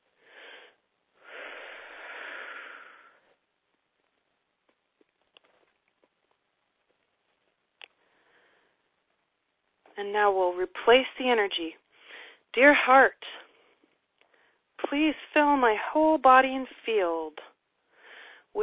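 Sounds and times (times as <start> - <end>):
big deep breath inhale: 0.2 - 3.3, 17.9 - 18.5
speech: 10.0 - 11.8, 12.5 - 13.4, 14.9 - 17.5.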